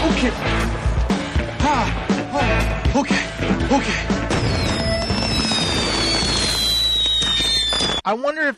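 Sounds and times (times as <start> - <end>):
speech: 0.2 - 0.7, 1.7 - 4.2, 8.1 - 8.5
fireworks crackling, hissing and popping inside a van: 4.3 - 8.1.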